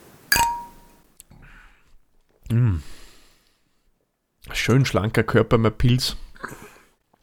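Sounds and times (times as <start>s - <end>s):
beer glasses clinking in a toast: 0.3s - 1.0s
speech: 2.5s - 3.0s, 4.6s - 6.6s.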